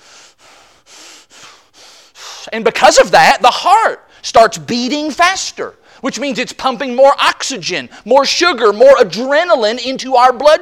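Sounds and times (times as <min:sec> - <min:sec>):
heavy breathing: 0:00.0 - 0:02.5
speech: 0:02.5 - 0:10.6.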